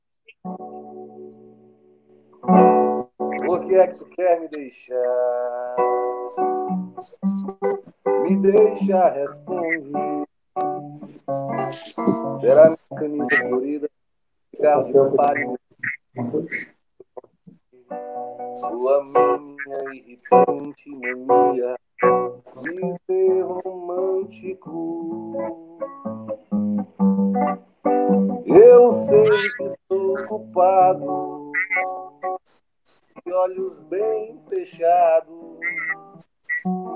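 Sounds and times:
speech: 0.4s - 1.5s, 2.4s - 2.8s, 3.5s - 5.6s, 6.3s - 10.2s, 11.2s - 14.0s, 14.6s - 15.6s, 16.2s - 16.7s, 18.6s - 25.9s, 26.9s - 31.4s, 32.5s - 35.8s
softly strummed acoustic guitar: 0.4s - 13.9s, 14.6s - 16.7s, 17.8s - 32.5s, 33.2s - 36.9s
man singing a melodic song in Portuguese: 3.3s - 7.3s, 8.1s - 14.0s, 14.6s - 15.6s, 18.6s - 21.8s, 22.5s - 26.1s, 28.4s - 32.1s, 33.2s - 36.0s.

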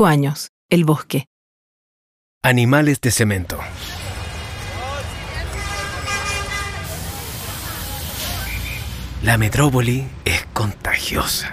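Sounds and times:
speech: 0.0s - 1.3s, 2.4s - 4.0s, 9.2s - 11.5s
dense hissing street traffic: 3.0s - 11.5s
indistinct voices: 3.1s - 11.5s
car horn honking: 3.8s - 9.0s.

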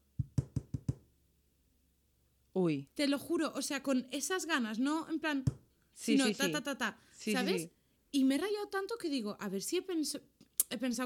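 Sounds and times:
firm knocks on a door: 0.2s - 1.0s
speech: 2.6s - 11.0s.

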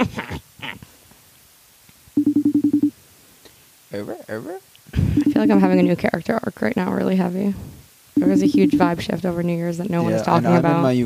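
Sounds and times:
telephone ringing with rapid pulsed electronic trills: 2.2s - 2.9s, 5.2s - 6.0s, 8.2s - 9.1s
speech: 3.9s - 11.0s
brief indistinct noises: 5.0s - 6.2s, 8.2s - 10.4s.

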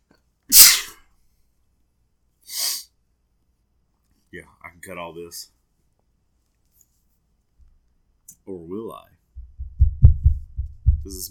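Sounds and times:
loud sneeze: 0.5s - 1.0s
speech: 4.3s - 5.6s, 8.5s - 9.2s, 11.0s - 11.2s.

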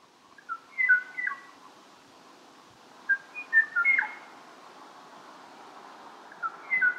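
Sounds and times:
faint hiss: 0.0s - 6.9s
Kauai o'o singing clear fluty whistled phrases: 0.4s - 1.5s, 3.1s - 4.2s, 6.4s - 6.9s.

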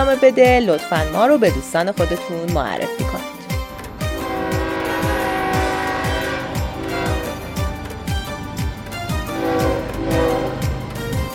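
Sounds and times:
speech: 0.0s - 3.3s
train metallic tonal whine: 3.8s - 11.3s
train wheels clattering over the rails: 3.8s - 11.3s.

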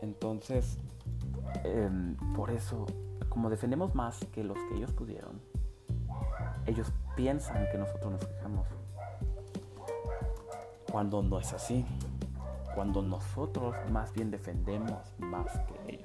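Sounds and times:
speech: 0.0s - 5.5s, 6.4s - 8.8s, 10.9s - 12.1s, 12.8s - 16.0s
dog barking in short sharp bursts: 1.5s - 1.7s, 6.1s - 11.8s, 12.4s - 12.9s, 13.6s - 16.0s.

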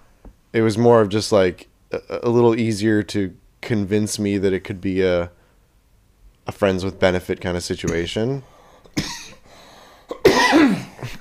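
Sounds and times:
speech: 0.5s - 5.4s, 6.5s - 9.1s
person coughing after saliva went down the wrong pipe: 8.8s - 9.4s, 10.0s - 11.1s.

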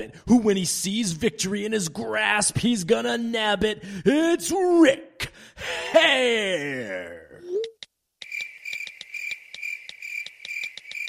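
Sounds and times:
speech: 0.0s - 7.7s
crickets chirping: 8.2s - 11.0s.

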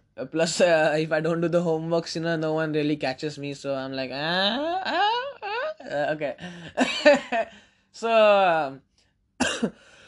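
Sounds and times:
speech: 0.2s - 5.2s, 5.8s - 10.0s
person coughing: 9.4s - 9.9s.

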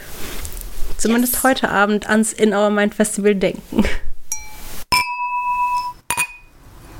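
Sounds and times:
speech: 1.0s - 4.1s
glasses clinking in a toast: 4.3s - 6.6s.

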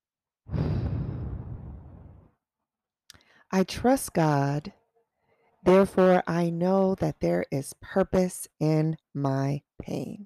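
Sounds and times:
deep breath exhaled through the mouth during a guided breathing exercise: 0.5s - 2.2s
speech: 3.5s - 4.8s, 5.6s - 10.2s.

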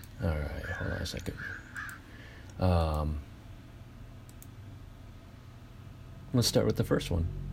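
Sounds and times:
speech: 0.2s - 1.8s, 2.6s - 3.3s, 6.3s - 7.4s
crow cawing: 0.6s - 2.4s.

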